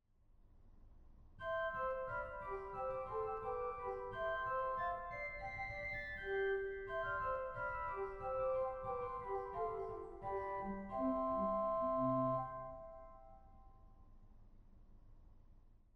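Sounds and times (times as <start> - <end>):
1844 organ playing its Flauto Traverso 4 stop: 1.4 - 13.4.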